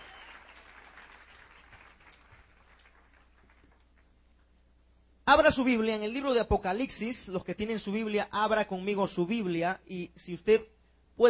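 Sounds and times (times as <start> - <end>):
church congregation applauding: 0.0 - 4.2
speech: 5.3 - 11.2.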